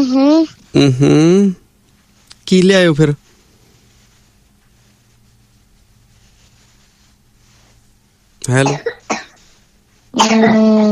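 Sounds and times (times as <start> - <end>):
speech: 0.0 - 1.6, 2.5 - 3.2, 8.5 - 9.0, 10.2 - 10.9
man coughing harshly: 8.5 - 9.4, 10.2 - 10.6.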